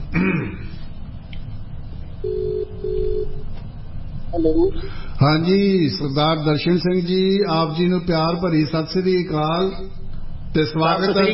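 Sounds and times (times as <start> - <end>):
speech: 0.2 - 0.6, 4.3 - 11.3
electronic telephone tones for an incoming call: 2.3 - 3.4.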